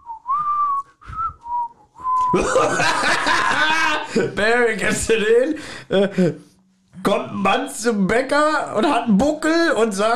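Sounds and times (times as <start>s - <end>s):
person whistling short notes: 0.0s - 2.4s
speech: 2.3s - 10.1s
breathy laughter: 2.4s - 4.4s.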